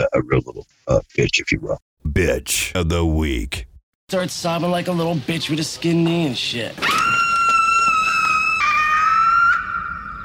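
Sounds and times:
speech: 0.0 - 7.2
high-pitched human scream: 6.8 - 10.2.

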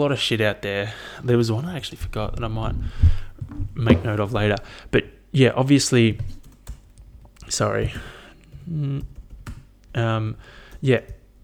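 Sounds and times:
speech: 0.0 - 6.4, 7.5 - 9.2, 10.0 - 11.2
typing on a computer keyboard: 6.0 - 11.3.

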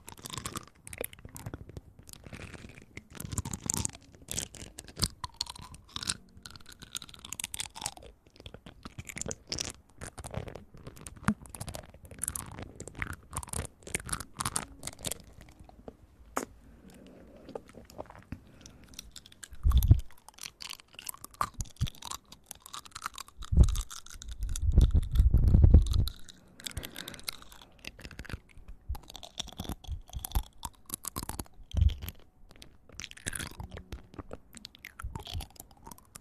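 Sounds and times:
close wet chewing and crunchy biting at the ear: 0.0 - 36.1
heavier low thumps: 24.6 - 26.2.

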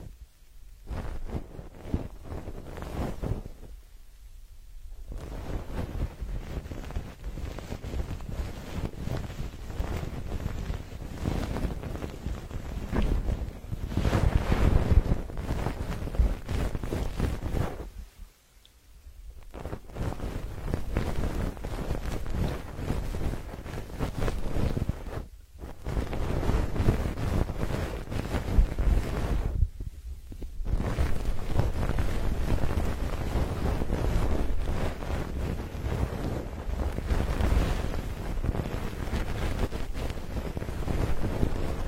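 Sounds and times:
goose feather plugs rubbing and pressing against the ear: 0.8 - 3.8, 5.0 - 18.3, 19.4 - 41.8.

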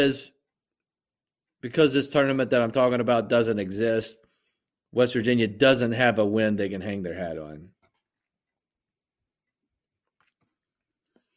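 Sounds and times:
speech: 0.0 - 0.4, 1.6 - 4.2, 4.9 - 7.8
quiet chewing of grape flavored gum: 7.8 - 11.3.

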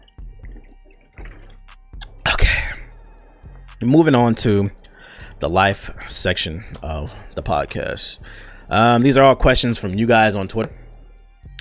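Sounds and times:
wet sloshing gulp of water: 0.0 - 3.8
person swigging water: 0.0 - 3.9
speech: 3.8 - 4.8, 5.4 - 10.8.

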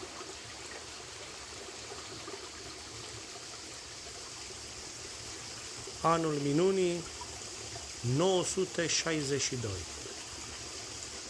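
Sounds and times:
holy spring water of Saint Athanasius the Athonite trickling and splashing at Great Lavra: 0.0 - 11.2
speech: 6.0 - 7.2, 8.0 - 10.0.

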